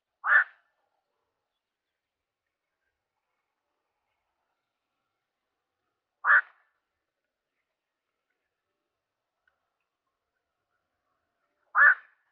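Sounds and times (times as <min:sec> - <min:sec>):
black-crowned night heron: 0:00.2 - 0:00.8, 0:06.2 - 0:06.8, 0:10.4 - 0:12.3.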